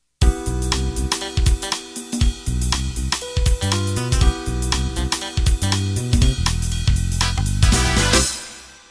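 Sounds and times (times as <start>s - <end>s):
jazz funk music ending: 0.2s - 8.8s.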